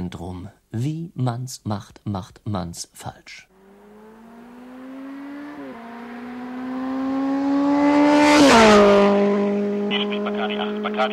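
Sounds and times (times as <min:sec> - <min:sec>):
speech: 0:00.1 - 0:03.5, 0:11.0 - 0:11.1
stolen motorcycle speeding away from a bank robbery: 0:03.5 - 0:11.1.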